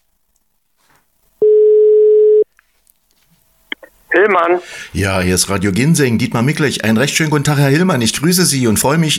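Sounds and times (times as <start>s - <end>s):
ringback tone of an outgoing telephone call: 1.4s - 2.5s
speech: 4.2s - 9.1s.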